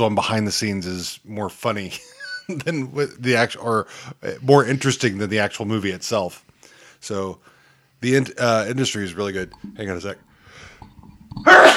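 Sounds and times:
speech: 0:00.0 - 0:10.7
faint low noise: 0:00.0 - 0:11.7
person sneezing loudly: 0:11.4 - 0:11.7.

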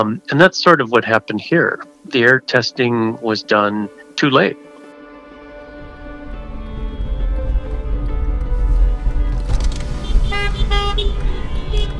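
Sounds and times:
speech: 0:00.0 - 0:04.6
steady rumble of idling and moving vehicles: 0:05.7 - 0:11.9
car horns honking in a caravan of almost 100 cars: 0:09.1 - 0:11.9.

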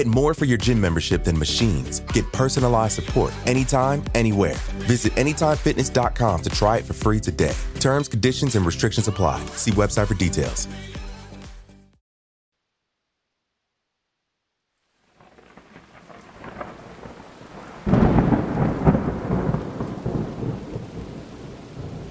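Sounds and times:
speech: 0:00.0 - 0:11.0
steady rain in a thunderstorm: 0:14.8 - 0:22.0
deep rolling thunderclap: 0:15.2 - 0:22.0.

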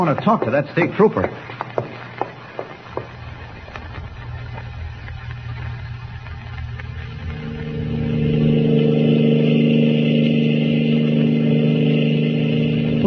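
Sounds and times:
speech: 0:00.0 - 0:01.6
car engine driving and accelerating: 0:06.8 - 0:13.0.

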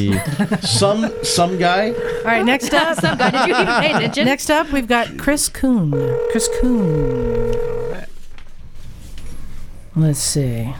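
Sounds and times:
laughter: 0:00.0 - 0:04.4
speech: 0:00.0 - 0:07.7, 0:10.0 - 0:10.7
telephone ringing on an outgoing call: 0:00.7 - 0:02.7, 0:06.0 - 0:08.1
phone line hiss: 0:00.8 - 0:02.6, 0:06.0 - 0:08.1.

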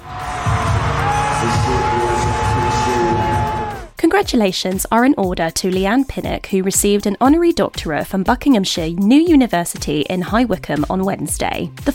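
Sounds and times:
high whoops: 0:00.0 - 0:03.9
large concert crowd roaring and cheering: 0:00.0 - 0:04.0
speech: 0:04.1 - 0:11.9.

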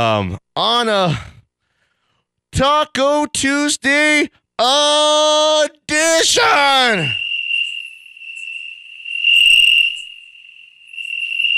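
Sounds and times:
speech: 0:00.0 - 0:01.3, 0:02.5 - 0:07.2
crickets chirping: 0:06.4 - 0:11.5.

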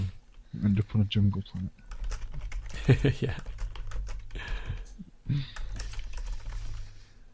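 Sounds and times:
speech: 0:00.6 - 0:01.8, 0:02.9 - 0:03.4, 0:05.3 - 0:05.6
computer keyboard typing: 0:01.5 - 0:07.0.

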